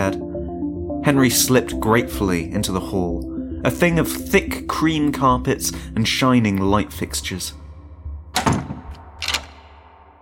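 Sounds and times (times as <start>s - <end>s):
speech: 0.0s - 0.3s, 1.0s - 7.6s
door opening and closing: 8.3s - 10.1s.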